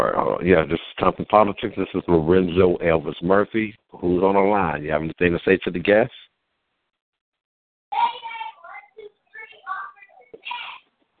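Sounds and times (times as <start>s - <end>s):
speech: 0.0s - 6.2s
little kid yelling in the background: 8.0s - 10.8s.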